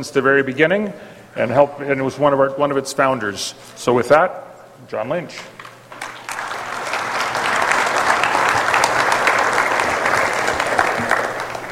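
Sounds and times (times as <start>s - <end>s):
speech: 0.0s - 5.6s
crowd of people applauding: 5.9s - 11.6s.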